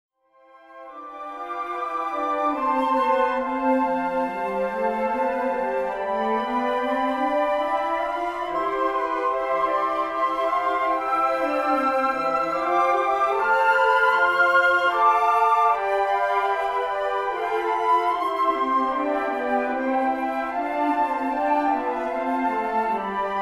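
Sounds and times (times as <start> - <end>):
flute choir playing a hymn: 0.4 - 23.4.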